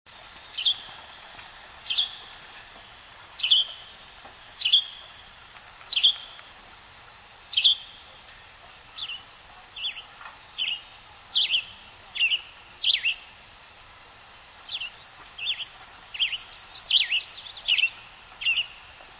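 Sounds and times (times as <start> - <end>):
western tanager singing in pines: 0.4 - 13.5, 14.6 - 19.1
western tanager per-deek calls in pines: 1.8 - 2.5, 3.4 - 6.6, 7.5 - 8.2, 9.0 - 13.4, 14.7 - 18.9.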